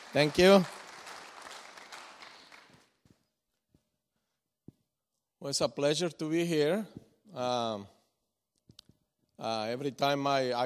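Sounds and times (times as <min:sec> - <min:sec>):
audience applause welcoming guests at a church gathering: 0:00.0 - 0:02.8
speech: 0:00.1 - 0:00.8, 0:05.4 - 0:08.0, 0:09.4 - 0:10.6.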